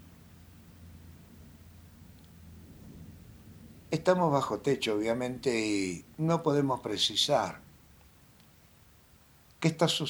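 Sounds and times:
soft hiss: 0.0 - 10.0
distant thunder rumbling: 1.0 - 4.0
speech: 3.9 - 7.6, 9.6 - 10.0.

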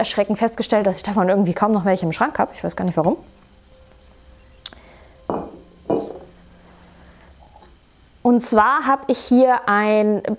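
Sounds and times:
speech: 0.0 - 3.4, 8.3 - 10.3
whisky glass clinking against a hard surface: 5.3 - 6.3
long-stemmed whisky glass being picked up indoors: 5.3 - 6.4.

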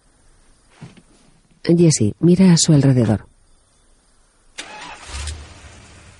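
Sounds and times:
speech: 1.6 - 3.3
car engine starting: 4.6 - 6.1.

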